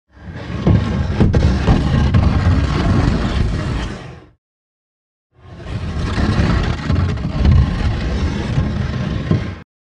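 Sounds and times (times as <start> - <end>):
cabinet being moved across the floor: 0.1 - 4.4, 5.4 - 9.6.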